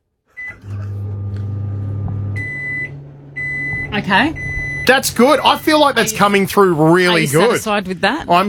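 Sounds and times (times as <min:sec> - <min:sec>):
microwave oven motor humming: 0:00.3 - 0:07.6
microwave oven electronic beep: 0:00.4 - 0:06.1
speech: 0:04.0 - 0:08.4.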